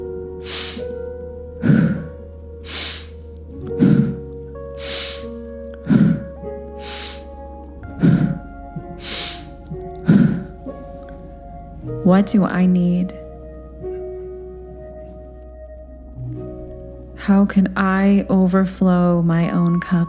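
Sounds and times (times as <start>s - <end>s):
steady quiet tonal background: 0.0s - 20.0s
sharp rhythmic breaths from an active breathing exercise: 0.4s - 1.0s, 1.6s - 11.5s
speech: 12.1s - 13.2s, 17.3s - 20.0s.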